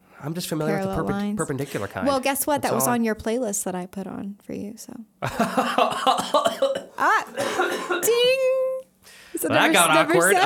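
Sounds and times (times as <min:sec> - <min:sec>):
speech: 0:00.2 - 0:08.6, 0:09.4 - 0:10.4
person coughing short voiced coughs: 0:05.3 - 0:08.2.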